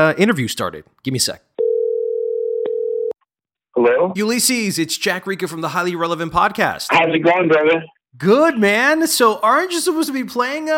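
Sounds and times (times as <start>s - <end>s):
speech: 0.0s - 1.5s, 3.8s - 10.7s
steady telephone ringing tone: 1.6s - 3.2s.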